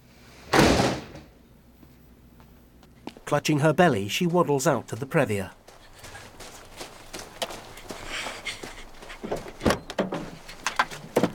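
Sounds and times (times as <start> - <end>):
door slamming shut: 0.5 - 1.3, 9.6 - 10.2
speech: 3.3 - 5.6
door rattling: 9.2 - 11.3.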